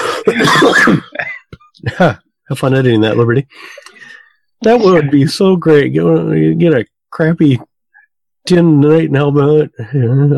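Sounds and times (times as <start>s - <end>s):
person coughing raspy: 0.0s - 1.4s
speech: 0.8s - 1.1s, 2.0s - 3.9s, 4.6s - 7.7s, 8.4s - 10.3s.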